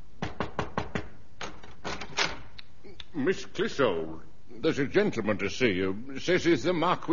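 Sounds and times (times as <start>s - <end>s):
knocking on a dressing room door at night: 0.2s - 1.2s
speech: 3.2s - 7.1s.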